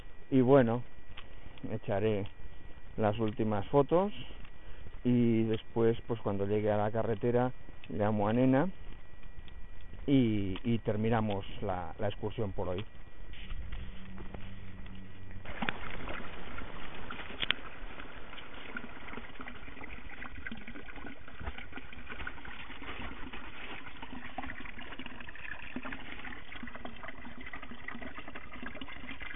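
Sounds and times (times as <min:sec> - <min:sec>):
speech: 0:00.3 - 0:00.9, 0:01.6 - 0:02.4, 0:03.0 - 0:04.4, 0:05.0 - 0:08.8, 0:10.1 - 0:13.0
water pouring from a fountain spout: 0:15.4 - 0:29.3.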